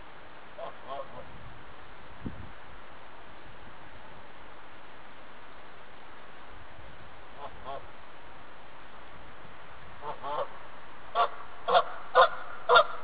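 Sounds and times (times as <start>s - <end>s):
Canada geese: 0.6s - 1.3s, 7.3s - 7.9s, 10.0s - 13.0s.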